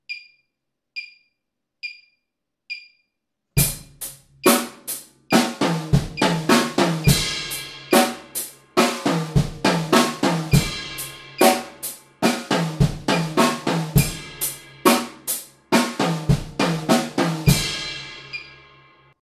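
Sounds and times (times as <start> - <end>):
drummer playing a triplet break: 3.6 - 18.7.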